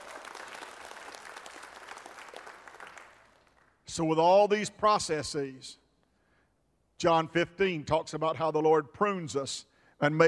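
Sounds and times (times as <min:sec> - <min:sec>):
room full of people applauding: 0:00.0 - 0:03.8
speech: 0:04.0 - 0:05.8, 0:07.0 - 0:10.2.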